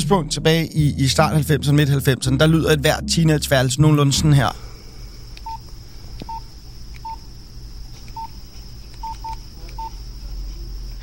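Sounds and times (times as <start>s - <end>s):
steady hum: 0.0s - 11.0s
speech: 0.1s - 4.6s
1990s mobile phone keypad beeps while typing an SMS: 9.0s - 9.9s.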